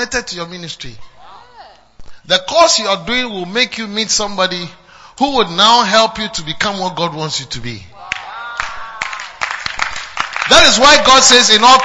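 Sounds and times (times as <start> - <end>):
speech: 0.0 - 1.2, 2.3 - 7.9, 10.5 - 11.8
audience clapping in scattered bursts: 8.1 - 11.8.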